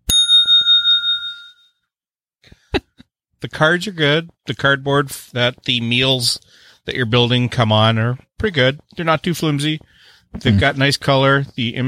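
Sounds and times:
small tabletop bell from a dice game struck once: 0.0s - 1.8s
speech: 3.4s - 11.8s.

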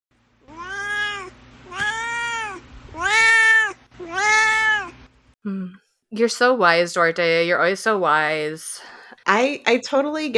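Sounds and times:
cat meowing: 0.4s - 5.0s
speech: 5.4s - 10.3s.

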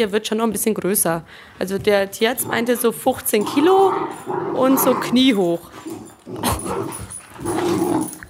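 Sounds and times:
speech: 0.0s - 8.1s
puppies including a terrier growling and barking while playing: 2.3s - 8.2s.

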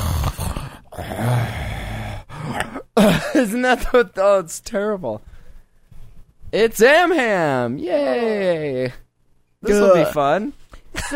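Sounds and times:
heavy raspy breathing with faint groaning: 0.0s - 2.8s
speech: 3.0s - 5.3s, 6.5s - 9.0s, 9.6s - 11.1s.

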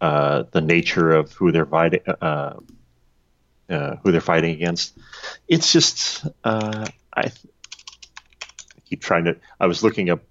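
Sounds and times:
speech: 0.0s - 2.8s, 3.7s - 7.5s, 8.9s - 10.2s
typing on a computer keyboard: 6.5s - 8.9s.

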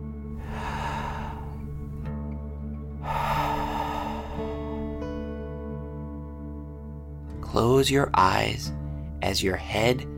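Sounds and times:
soft sustained music: 0.0s - 10.1s
deep breath in and out during a guided relaxation exercise: 0.3s - 2.2s, 3.0s - 5.3s
speech: 7.5s - 10.1s.

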